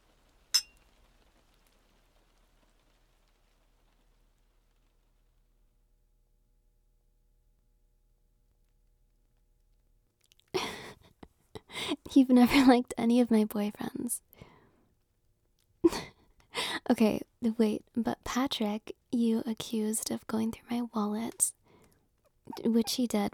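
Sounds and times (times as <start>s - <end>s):
glasses clinking in a toast: 0.6s - 0.8s
speech: 11.8s - 14.5s, 16.9s - 21.6s, 22.5s - 23.3s.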